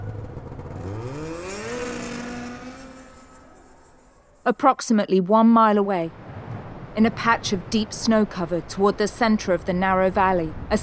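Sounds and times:
snowmobile engine revving and driving off: 0:00.0 - 0:04.4
speech: 0:04.5 - 0:06.2, 0:07.0 - 0:10.8.

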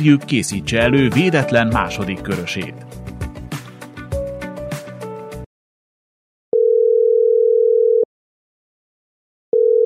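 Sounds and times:
speech: 0:00.0 - 0:03.0
hold-style music: 0:00.0 - 0:05.4
telephone ringback tone while call connects: 0:06.6 - 0:08.1, 0:09.6 - 0:09.8.

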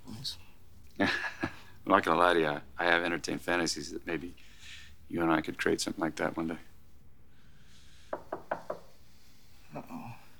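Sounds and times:
speech: 0:00.2 - 0:00.4, 0:01.0 - 0:04.4, 0:05.1 - 0:06.7
knocking on a door: 0:08.1 - 0:08.9.

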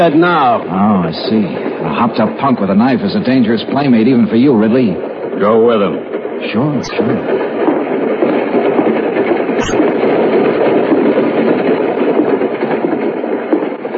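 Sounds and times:
speech: 0:00.0 - 0:07.6
train rumbling along rails: 0:00.0 - 0:13.9
sharp click: 0:09.6 - 0:09.9.

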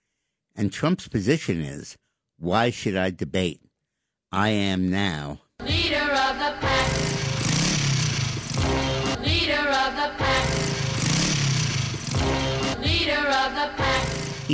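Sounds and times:
speech: 0:00.6 - 0:03.6, 0:04.3 - 0:07.0
motorcycle engine revving: 0:06.6 - 0:13.1, 0:13.8 - 0:14.5.

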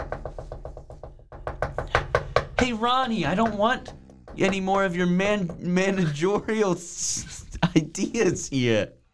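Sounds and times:
knocking on a tour bus door: 0:00.0 - 0:05.8
speech: 0:02.6 - 0:09.0.

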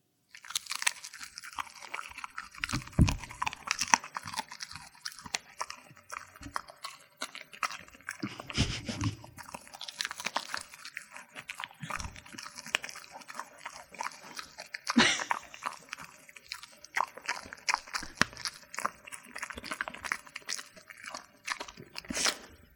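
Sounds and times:
chewing beef jerky: 0:00.3 - 0:22.7
wet mouth sounds: 0:00.4 - 0:22.7.

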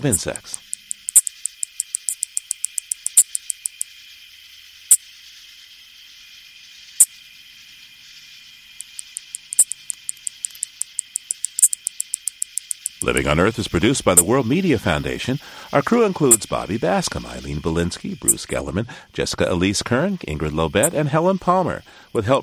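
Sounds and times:
speech: 0:00.0 - 0:00.6, 0:13.0 - 0:22.4
two male anglewing katydids singing: 0:00.0 - 0:03.9, 0:08.8 - 0:22.4
steady high insect hiss: 0:00.0 - 0:22.4.

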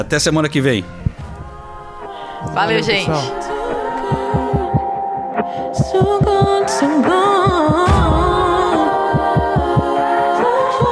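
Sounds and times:
speech: 0:00.0 - 0:01.0, 0:02.4 - 0:03.4, 0:05.8 - 0:07.9
sustained musical drone: 0:00.8 - 0:05.4
heartbeat sound effect thumping: 0:01.0 - 0:01.7, 0:02.4 - 0:10.0.

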